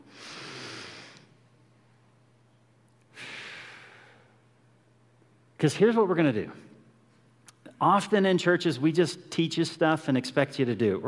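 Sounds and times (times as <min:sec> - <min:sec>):
deep breathing during a guided group meditation: 0:00.0 - 0:01.4, 0:03.0 - 0:04.5
low steady hum: 0:00.0 - 0:11.0
speech: 0:05.6 - 0:06.7, 0:07.8 - 0:11.0.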